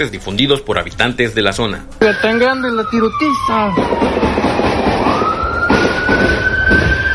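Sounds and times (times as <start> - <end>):
speech: 0.0 - 4.8
rumbling street noise: 2.0 - 7.1
state police patrol car siren wailing: 2.0 - 7.1.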